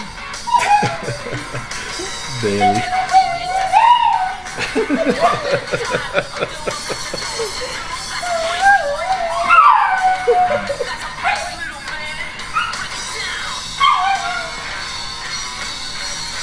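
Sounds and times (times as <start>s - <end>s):
people chuckling: 0.5s - 8.8s, 10.1s - 11.1s
dog barking and yipping: 0.6s - 11.6s, 13.8s - 14.6s
speech: 2.4s - 3.1s, 4.8s - 9.1s.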